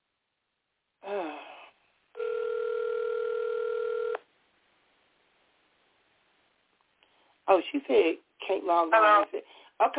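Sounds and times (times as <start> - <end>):
steady loud electronic tone on a telephone line while adding a caller: 2.2 - 4.2
speech: 7.5 - 9.9.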